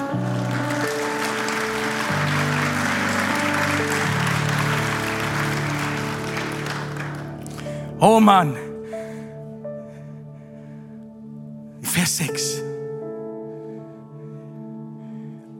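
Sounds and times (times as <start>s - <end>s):
crowd clapping for one person: 0.0s - 8.3s
sustained keyboard chords: 0.0s - 15.5s
speech: 8.0s - 8.7s, 12.1s - 12.7s.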